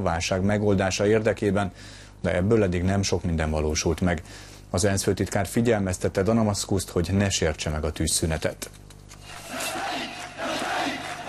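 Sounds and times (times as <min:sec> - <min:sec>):
speech: 0:00.0 - 0:08.8
large crowd near Homs Syria cheering for a rebel army: 0:09.3 - 0:11.2.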